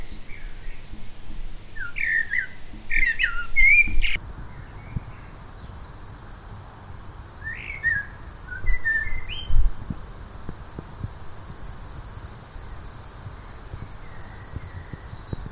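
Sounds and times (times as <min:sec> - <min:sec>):
common blackbird song: 0:00.0 - 0:06.0, 0:07.4 - 0:09.7, 0:12.7 - 0:15.5.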